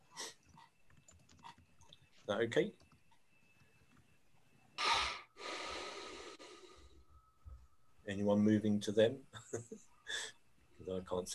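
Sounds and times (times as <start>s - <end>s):
faint hum: 0.0s - 11.3s
speech: 2.3s - 2.8s, 8.1s - 10.0s, 10.8s - 11.3s
person breathing over an open microphone in an online meeting: 4.8s - 7.1s.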